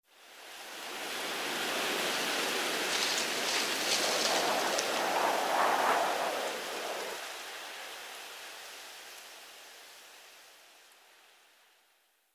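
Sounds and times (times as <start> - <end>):
leafy wind whistling: 1.6 - 7.5.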